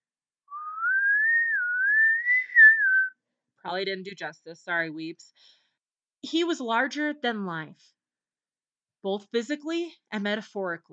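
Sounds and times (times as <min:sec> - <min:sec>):
person whistling a short wavering melody: 0:00.5 - 0:03.2
speech: 0:03.6 - 0:05.6, 0:06.2 - 0:08.0, 0:09.0 - 0:10.9.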